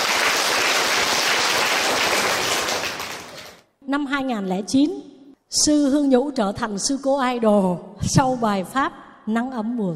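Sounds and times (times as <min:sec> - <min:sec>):
audience applause: 0:00.0 - 0:03.6
speech: 0:03.9 - 0:09.9.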